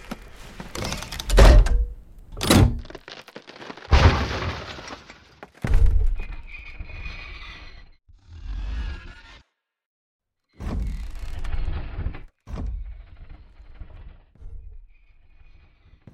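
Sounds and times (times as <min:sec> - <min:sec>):
heavy wooden trap door thudding open: 0:00.7 - 0:06.0.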